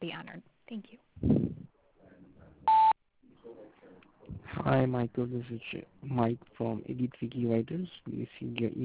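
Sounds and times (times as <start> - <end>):
speech: 0.3 - 1.0, 4.7 - 8.8
voicemail beep: 2.7 - 3.0.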